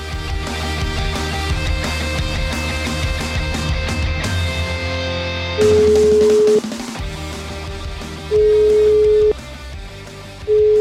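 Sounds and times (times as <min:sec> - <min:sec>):
music: 0:00.0 - 0:10.8
telephone call ringback tones: 0:05.6 - 0:06.6, 0:08.3 - 0:09.3, 0:10.5 - 0:10.8.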